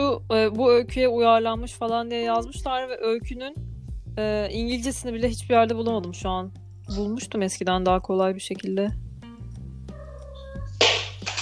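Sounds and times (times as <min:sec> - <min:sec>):
speech: 0:00.2 - 0:09.0
cat meowing: 0:09.9 - 0:11.0.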